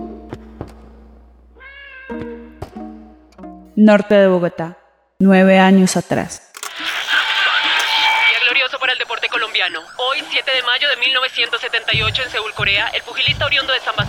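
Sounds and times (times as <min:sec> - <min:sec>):
cat meowing while circling: 0:01.6 - 0:02.5
speech: 0:03.8 - 0:06.5, 0:09.6 - 0:14.0
laughter: 0:06.8 - 0:08.5.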